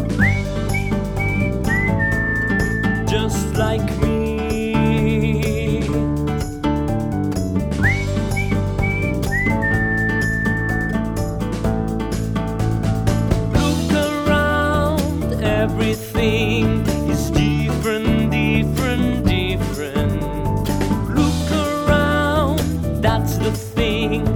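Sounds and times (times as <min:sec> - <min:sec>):
person whistling a bright sliding melody: 0:00.0 - 0:06.1, 0:07.7 - 0:11.4, 0:13.6 - 0:24.3
full steady musical backing: 0:00.0 - 0:24.3
person singing a brief line: 0:02.6 - 0:06.2, 0:13.6 - 0:24.3.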